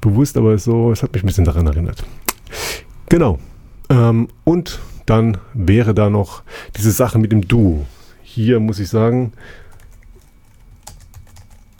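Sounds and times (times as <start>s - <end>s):
speech: 0.0s - 9.6s
typing on a computer keyboard: 9.6s - 11.7s.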